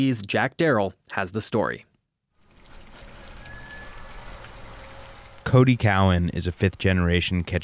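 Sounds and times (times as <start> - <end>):
speech: 0.0 - 1.9, 5.5 - 7.6
water lapping and trickling at a harbor dock on a clear snowy day: 2.4 - 7.6
faint thin tone: 2.9 - 5.6.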